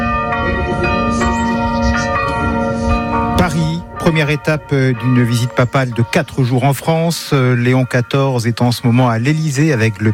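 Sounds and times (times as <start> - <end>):
several church bells ringing in a peal: 0.0 - 10.1
speech: 3.5 - 10.1.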